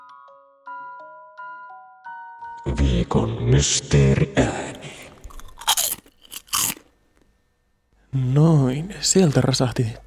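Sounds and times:
speech: 2.6s - 5.0s, 8.2s - 10.0s
smooth wave-shaped potato chip being bitten: 5.2s - 6.9s.

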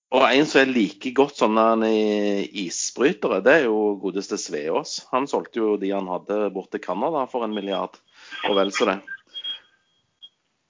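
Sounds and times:
speech: 0.2s - 9.2s
telephone ringing with short high electronic tones: 8.4s - 10.0s.

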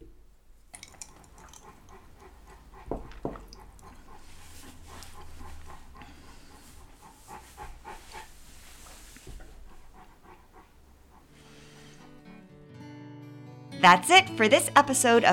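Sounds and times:
female dog sharp snorts: 0.8s - 12.4s
speech: 13.8s - 15.3s.

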